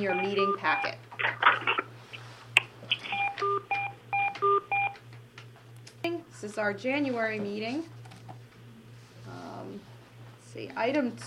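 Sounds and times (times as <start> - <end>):
speech: 0.0 - 1.8, 6.4 - 8.0, 10.5 - 11.2
low pulsing hum: 0.0 - 11.2
telephone keypad touch-tones dialing into a conference line: 0.1 - 0.9, 3.1 - 5.0.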